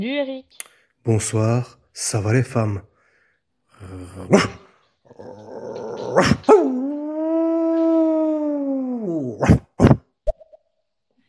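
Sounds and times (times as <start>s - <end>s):
speech: 0.0s - 2.9s, 3.8s - 7.0s, 9.2s - 9.6s
dog growling: 3.7s - 9.9s
dog barking: 4.3s - 4.7s.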